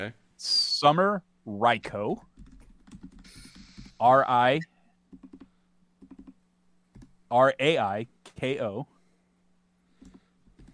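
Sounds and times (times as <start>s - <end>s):
speech: 0.0s - 2.3s, 4.0s - 4.7s, 7.3s - 8.9s
typing on a computer keyboard: 2.4s - 3.9s, 5.1s - 7.1s, 10.0s - 10.7s.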